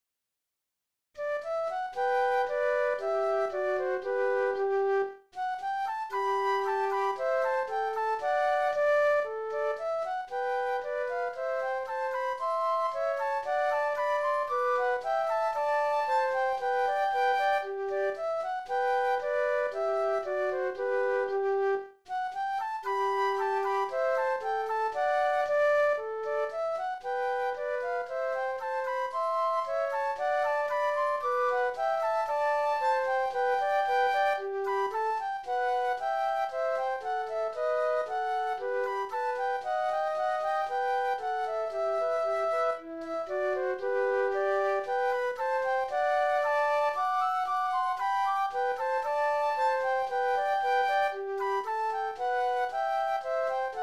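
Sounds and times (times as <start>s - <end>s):
classical air flute duet: 1.2s - 53.8s.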